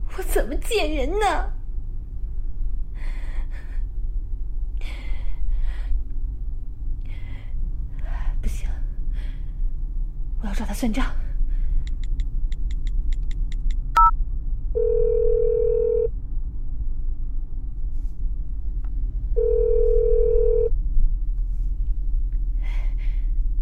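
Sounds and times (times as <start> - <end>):
steady low rumble: 0.0 - 23.6
speech: 0.2 - 1.6, 10.4 - 11.2
telephone ringback tone, call unanswered: 14.8 - 16.1, 19.4 - 20.7.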